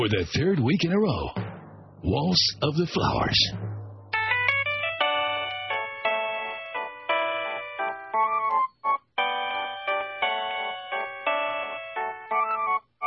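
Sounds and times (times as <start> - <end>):
speech: 0.0 - 1.4, 2.0 - 3.8
mobile phone ringtone electronic melody: 4.2 - 13.0.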